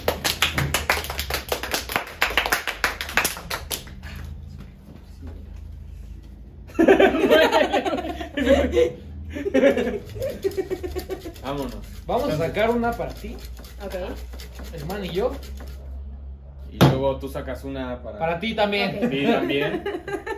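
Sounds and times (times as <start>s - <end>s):
hand clapping from a few people: 0.0s - 4.4s
laughter: 6.7s - 11.4s, 18.9s - 20.3s
speech: 8.4s - 10.8s, 11.5s - 15.6s, 17.0s - 20.3s.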